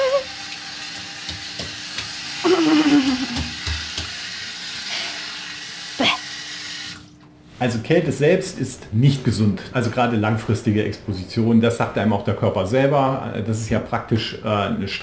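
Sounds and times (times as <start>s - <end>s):
cold shower running: 0.0s - 7.2s
short laugh: 2.4s - 3.4s
speech: 7.6s - 15.0s.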